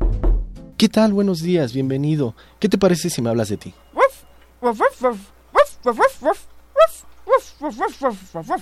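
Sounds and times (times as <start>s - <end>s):
speech: 0.8s - 3.8s, 4.6s - 6.5s, 7.6s - 8.6s
small dog yapping in high-pitched bursts: 3.9s - 8.6s.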